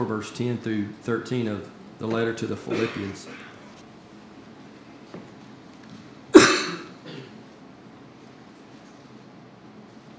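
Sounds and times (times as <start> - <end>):
speech: 0.0 - 3.5
person coughing: 2.7 - 3.6, 6.3 - 7.4.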